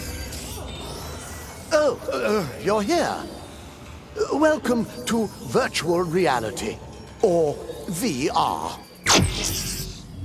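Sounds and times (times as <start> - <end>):
speech: 1.9 - 3.4, 4.2 - 9.7
brief noise burst: 9.1 - 10.1
synthetic sound effect of virtual balloons inflating in virtual reality: 9.1 - 10.2.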